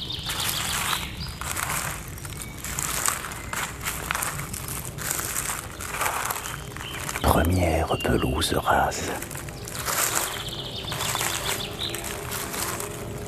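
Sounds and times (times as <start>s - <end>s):
assorted birds chirping and twittering in spring: 0.0s - 13.2s
dense rustling background: 0.0s - 13.2s
speech: 7.3s - 9.4s.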